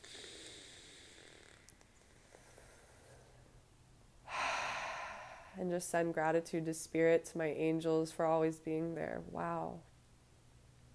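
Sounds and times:
slow deep breath: 0.0s - 3.5s, 4.2s - 5.7s
speech: 5.6s - 9.9s.

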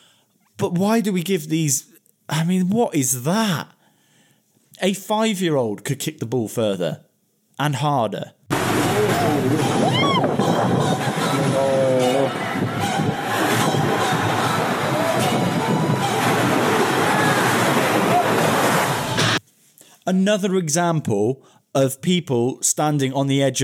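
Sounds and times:
speech: 0.6s - 3.8s, 4.8s - 9.7s, 20.1s - 23.6s
sea waves crashing against the shore: 8.5s - 19.4s
windy rush: 8.5s - 19.4s
voices talking and calling out: 8.8s - 18.5s.

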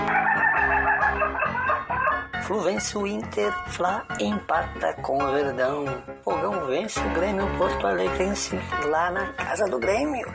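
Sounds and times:
rooster clucking and squawking: 0.0s - 2.2s
speech: 2.5s - 10.3s.

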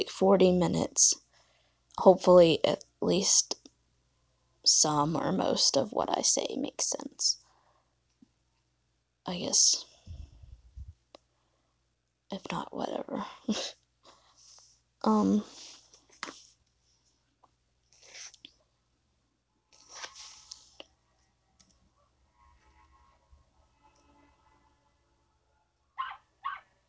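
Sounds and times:
speech: 0.0s - 1.2s, 2.0s - 3.6s, 4.6s - 7.4s, 9.3s - 9.9s, 12.3s - 13.8s, 15.0s - 15.6s
dogs barking: 26.0s - 26.7s.

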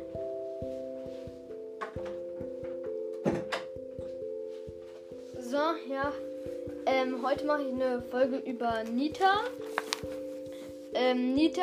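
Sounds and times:
electronic music: 0.0s - 11.6s
door pushed shut with a dull thud: 3.2s - 3.7s
speech: 7.2s - 9.6s, 11.0s - 11.6s.

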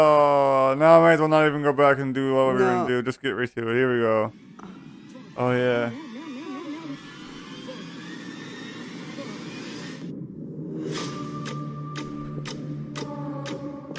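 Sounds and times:
speech: 0.0s - 4.8s, 5.4s - 6.1s
rumbling noise: 3.6s - 13.9s
sharp evenly spaced ticks: 11.4s - 13.9s.

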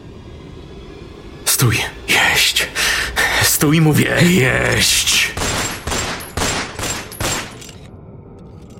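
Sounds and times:
speech: 1.6s - 2.9s, 3.6s - 5.6s
gunshots fired by a police officer: 5.4s - 7.8s.

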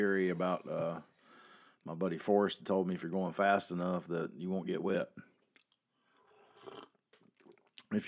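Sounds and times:
speech: 0.0s - 1.1s, 1.8s - 5.3s
sipping hot coffee: 5.6s - 7.9s.

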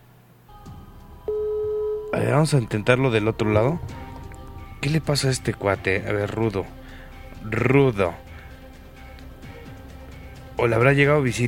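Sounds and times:
noise: 0.0s - 11.4s
steady phone tone of an unanswered telephone call: 1.2s - 3.0s
speech: 2.1s - 4.0s, 4.8s - 6.8s, 7.4s - 8.2s, 10.6s - 11.4s.

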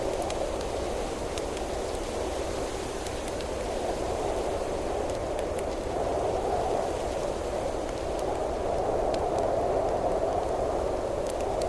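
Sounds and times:
soft campfire crackling in the woods: 0.0s - 11.6s
wind rushing through leaves on a windy night in the woods: 0.0s - 11.6s.

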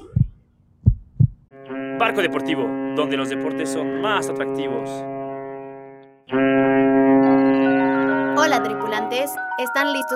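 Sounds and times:
heartbeat sound effect with deep low thumps: 0.0s - 1.5s
sustained musical tone: 1.5s - 10.1s
speech: 1.6s - 5.1s, 6.3s - 6.6s, 9.1s - 10.1s.

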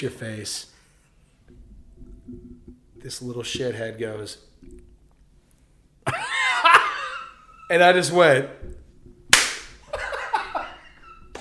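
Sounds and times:
speech: 0.0s - 0.8s, 3.0s - 4.5s, 7.7s - 8.8s
short breathy vocal bursts like laughter: 6.0s - 7.7s, 9.9s - 11.3s
sharp loud hand slap: 9.3s - 9.8s.

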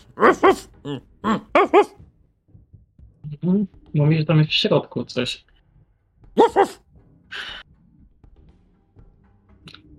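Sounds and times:
person mimicking a German shepherd's barking: 0.0s - 2.0s, 6.4s - 6.8s
speech: 0.2s - 2.0s, 3.4s - 5.5s, 6.4s - 6.8s.

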